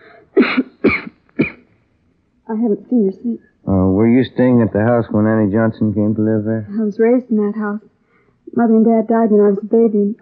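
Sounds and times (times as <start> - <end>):
woman coughing harshly: 0.2 - 1.6
speech: 2.5 - 7.9, 8.5 - 10.2
laughter: 3.7 - 6.6.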